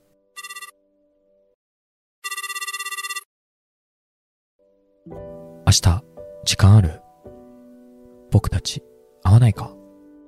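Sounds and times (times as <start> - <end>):
telephone ringing with electronic trill on an outgoing call: 0.4 - 0.7, 2.2 - 3.3
speech: 5.1 - 7.0, 8.4 - 9.8.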